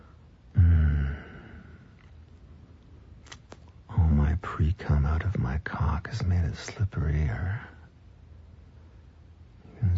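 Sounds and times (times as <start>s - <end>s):
loud heavy breathing: 0.0s - 2.0s
speech: 4.6s - 7.8s.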